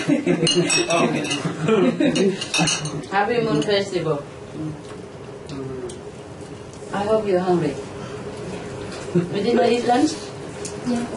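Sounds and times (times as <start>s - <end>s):
speech: 0.2s - 5.0s, 6.9s - 7.9s, 9.2s - 11.1s
cups clinking in a toast at a Moon Festival meal: 0.4s - 1.5s, 2.1s - 3.0s.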